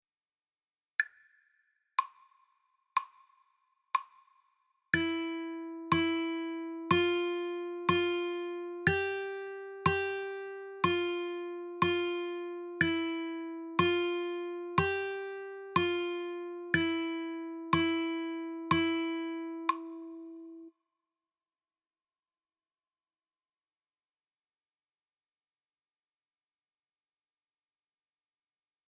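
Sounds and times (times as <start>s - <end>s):
guitar playing: 5.0s - 20.7s.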